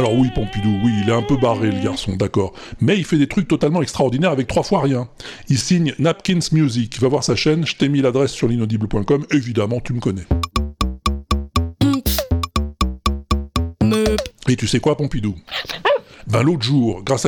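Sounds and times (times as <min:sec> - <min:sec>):
speech: 0:00.2 - 0:10.5, 0:13.9 - 0:17.2
music made from recorded door creaks: 0:10.3 - 0:14.3.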